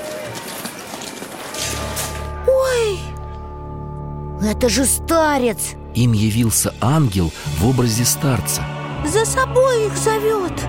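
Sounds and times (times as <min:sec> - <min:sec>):
people running through bushes: 0:00.0 - 0:02.2
speech: 0:04.4 - 0:10.6.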